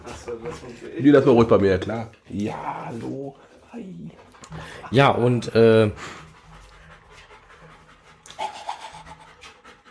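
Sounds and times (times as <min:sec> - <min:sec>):
dog panting: 0:00.0 - 0:09.9
speech: 0:00.1 - 0:06.2.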